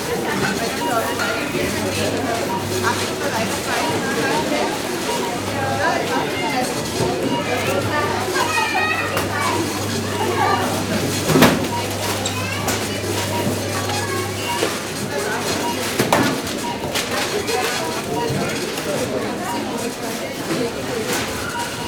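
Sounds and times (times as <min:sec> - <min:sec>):
supermarket cash desk ambience: 0:00.0 - 0:21.8.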